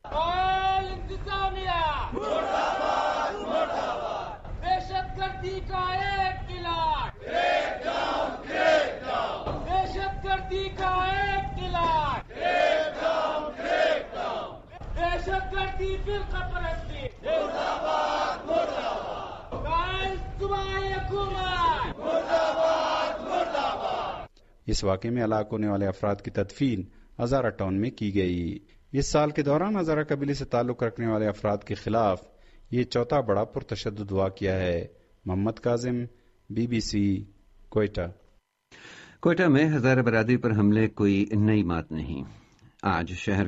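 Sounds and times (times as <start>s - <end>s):
crowd of protesters chanting slogans at a demonstration: 0.1s - 24.3s
speech: 24.7s - 43.4s.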